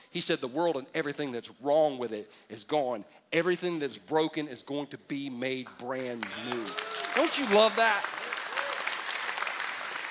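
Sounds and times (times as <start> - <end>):
speech: 0.1 - 8.2
large audience applauding: 6.1 - 10.0.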